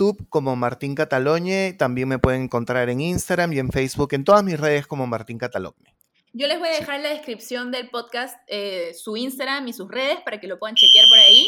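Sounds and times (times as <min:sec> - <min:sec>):
speech: 0:00.0 - 0:11.4
building fire alarm ringing with a high-pitched electronic tone: 0:10.8 - 0:11.4.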